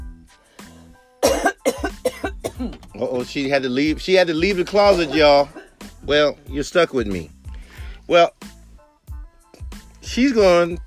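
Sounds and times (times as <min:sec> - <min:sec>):
harsh rapid coughing fit: 0:01.2 - 0:03.0, 0:04.5 - 0:06.4
speech: 0:03.0 - 0:07.4, 0:08.1 - 0:08.4, 0:10.1 - 0:10.8.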